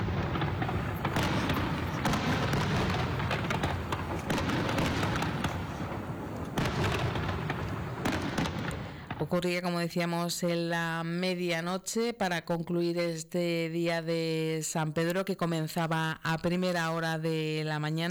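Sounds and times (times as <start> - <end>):
large fireworks display booming: 0.0 - 9.5
speech: 9.3 - 18.0.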